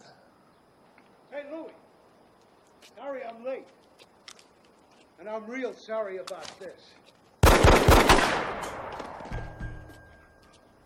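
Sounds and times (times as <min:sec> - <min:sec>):
speech: 0:03.0 - 0:03.8, 0:05.2 - 0:07.1
gunshots in a rapid burst: 0:07.4 - 0:09.4.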